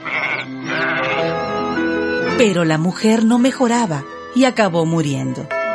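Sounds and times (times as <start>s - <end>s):
lamb bleating: 0.0s - 1.4s
speech: 2.4s - 5.6s.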